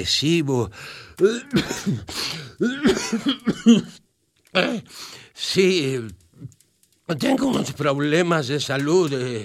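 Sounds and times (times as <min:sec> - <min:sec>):
speech: 0:00.0 - 0:09.4
fit of rough raspy coughing: 0:01.2 - 0:05.0.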